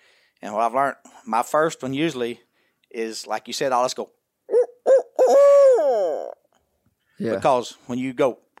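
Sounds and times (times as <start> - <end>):
speech: 0.4 - 4.2, 7.2 - 8.4
owl hoot turkey locator call: 4.5 - 6.4.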